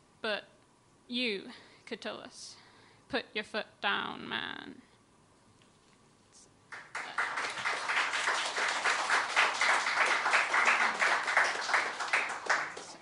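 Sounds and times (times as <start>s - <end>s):
speech: 1.1s - 4.9s
audience applause: 6.7s - 13.0s.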